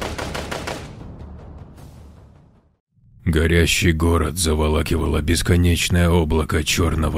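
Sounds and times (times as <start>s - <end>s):
rapid automatic gunfire: 0.0s - 1.0s
speech: 3.3s - 7.1s.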